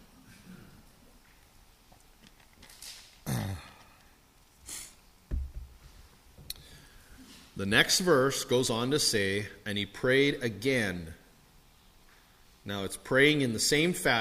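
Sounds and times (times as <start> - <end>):
person clearing throat into a lapel mic: 3.2 - 3.9
soft thump: 5.3 - 6.0
speech: 7.6 - 11.2, 12.7 - 14.2.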